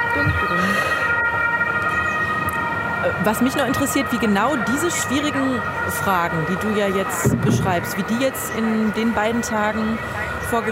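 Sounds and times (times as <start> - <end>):
ambulance siren wailing: 0.0 - 10.7
low murmur of voices: 3.0 - 10.7
speech: 3.0 - 10.7.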